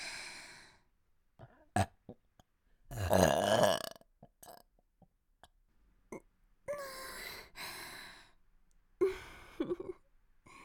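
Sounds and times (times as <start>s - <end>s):
person burping: 2.9s - 4.6s.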